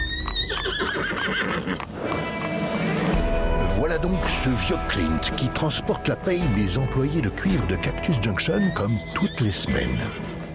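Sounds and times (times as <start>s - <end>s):
horse hooves clopping: 0.0s - 2.9s
horse whinnying: 0.0s - 3.0s, 8.4s - 10.4s
speech: 4.0s - 10.4s.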